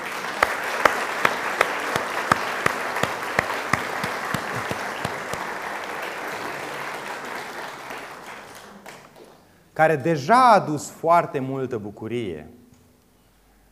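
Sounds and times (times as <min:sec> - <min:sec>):
church congregation applauding a child: 0:00.0 - 0:09.5
speech: 0:09.8 - 0:12.6.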